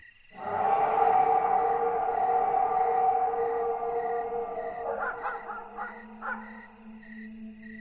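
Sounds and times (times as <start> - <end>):
monstrous roar like scream and wolf howl: 0.4 - 4.9
low steady drone: 0.4 - 7.6.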